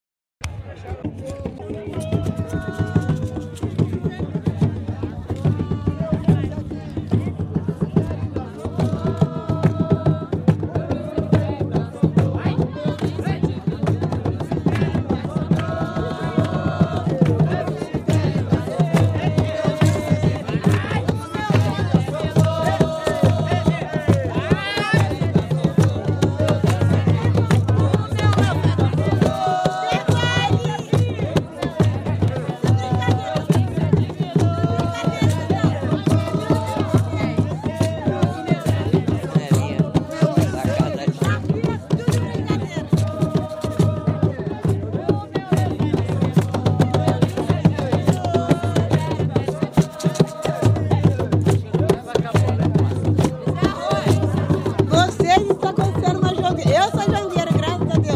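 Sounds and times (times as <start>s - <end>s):
jongo drumming and singing from Guaratinguetá: 0.4s - 58.1s.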